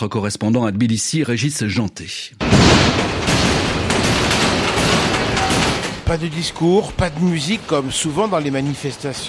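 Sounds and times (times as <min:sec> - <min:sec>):
speech: 0:00.0 - 0:04.2, 0:06.1 - 0:09.2
stones banging on metal protective plates: 0:02.4 - 0:06.2.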